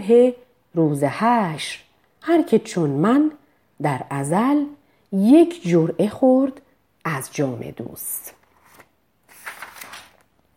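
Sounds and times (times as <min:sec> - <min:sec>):
speech: 0:00.0 - 0:08.4
paper pages being turned in a 50-leaf paper notebook: 0:08.2 - 0:10.4.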